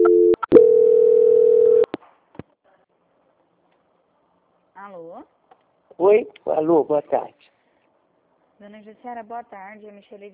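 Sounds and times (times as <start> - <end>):
telephone line tone during call transfer: 0.0 - 1.9
speech: 6.0 - 7.4, 8.6 - 10.3.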